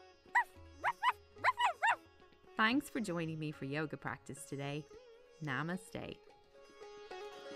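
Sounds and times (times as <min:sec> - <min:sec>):
human voice imitating dog woofs during yoga practice: 0:00.4 - 0:02.0
speech: 0:02.6 - 0:06.2.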